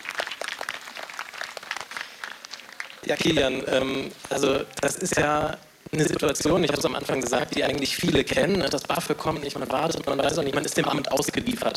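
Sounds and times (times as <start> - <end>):
audience applause at a live event: 0.0 - 3.3
speech: 3.0 - 11.7.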